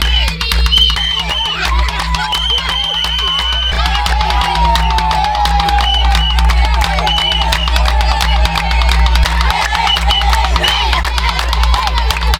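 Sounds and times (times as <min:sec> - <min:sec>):
Nigerian African dance music: 0:00.0 - 0:12.3.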